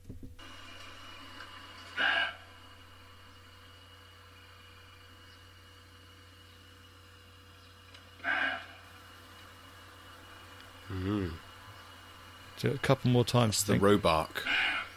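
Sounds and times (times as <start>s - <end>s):
faint low hum: 0.0s - 14.9s
roe deer buck giving hoarse barks: 1.9s - 2.6s, 8.2s - 9.1s, 14.4s - 14.9s
speech: 12.6s - 14.8s.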